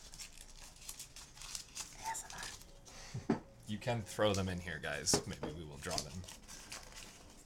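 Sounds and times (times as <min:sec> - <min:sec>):
packaging being unwrapped and torn: 0:00.0 - 0:02.8, 0:05.6 - 0:07.4
speech: 0:03.7 - 0:06.4.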